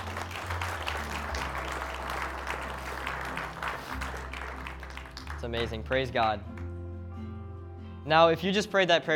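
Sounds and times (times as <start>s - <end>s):
large crowd applauding new Christ followers: 0.0s - 6.8s
speech: 5.4s - 6.5s, 8.1s - 9.1s.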